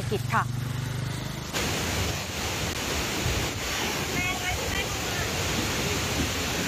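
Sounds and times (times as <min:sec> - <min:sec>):
speech: 0:00.1 - 0:00.7
muddy waterfall torrent roaring at Wachirathan Waterfall in Chiang Mai, Thailand: 0:01.5 - 0:06.6.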